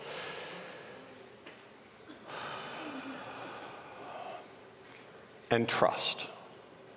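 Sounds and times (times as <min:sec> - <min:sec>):
person taking a deep breath: 0:00.0 - 0:01.1, 0:02.2 - 0:04.6.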